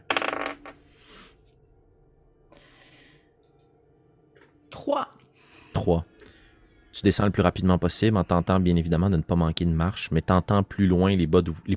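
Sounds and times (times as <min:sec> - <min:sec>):
dice rattling across a hard table surface: 0:00.0 - 0:00.8
speech: 0:04.9 - 0:06.1, 0:07.0 - 0:11.7.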